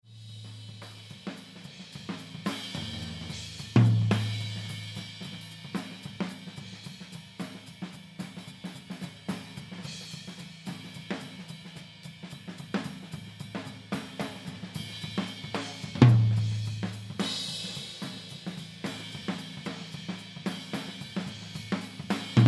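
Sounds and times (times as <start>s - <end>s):
high tom drum: 0.0s - 22.4s.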